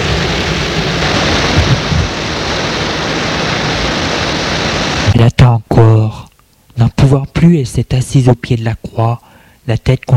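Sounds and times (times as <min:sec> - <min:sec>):
heavy rain pouring: 0:00.0 - 0:05.2
low gusty rumble: 0:00.0 - 0:05.2
wind roaring and buffeting the microphone: 0:00.0 - 0:05.2
speech: 0:07.1 - 0:10.1.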